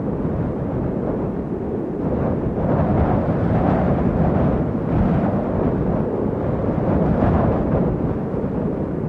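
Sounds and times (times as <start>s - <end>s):
wind on a hill: 0.0s - 9.0s.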